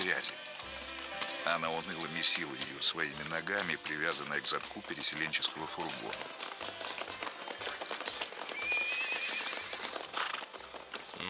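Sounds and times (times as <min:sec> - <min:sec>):
horse hooves clopping: 0:00.0 - 0:11.2
speech: 0:00.2 - 0:00.4, 0:01.5 - 0:07.0
horse whinnying: 0:07.2 - 0:11.2.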